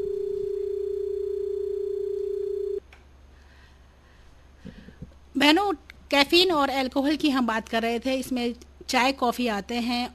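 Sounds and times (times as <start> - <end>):
single-pitch tone from a disconnected phone call: 0.0 - 2.8
speech: 5.4 - 10.1.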